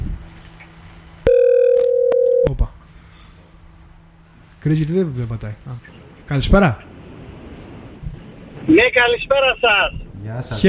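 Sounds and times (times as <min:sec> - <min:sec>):
telephone ring tone on a call-in line: 0:01.3 - 0:02.5
speech: 0:04.6 - 0:06.9, 0:08.7 - 0:10.6.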